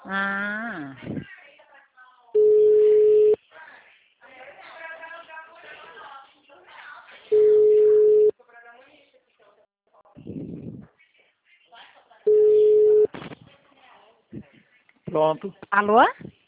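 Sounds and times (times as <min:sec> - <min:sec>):
speech: 0:00.1 - 0:01.2, 0:15.2 - 0:16.4
telephone ringback tone while call connects: 0:02.4 - 0:03.4, 0:07.3 - 0:08.3, 0:12.3 - 0:13.1.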